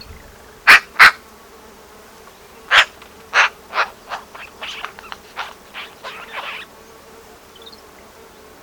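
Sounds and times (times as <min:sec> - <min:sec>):
Eurasian magpie harsh chatter: 0:00.7 - 0:01.2, 0:02.7 - 0:06.7.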